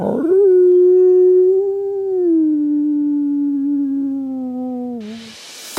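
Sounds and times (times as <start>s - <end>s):
person imitating a wolf howling: 0.0s - 5.2s.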